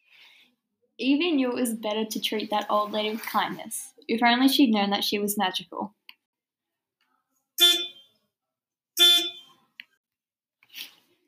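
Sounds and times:
speech: 1.0s - 6.0s
car horn honking: 7.6s - 8.1s, 9.0s - 9.6s.

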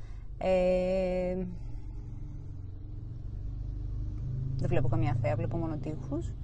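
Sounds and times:
car engine rumble heard from inside car: 0.0s - 6.4s
speech: 0.4s - 1.6s, 4.6s - 6.4s.

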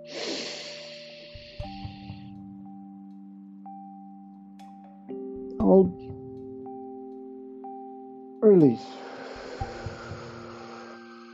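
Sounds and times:
slow inhale through the nostrils during a guided breathing exercise: 0.0s - 2.3s, 8.8s - 11.3s
speech: 5.6s - 6.1s, 8.4s - 9.0s.

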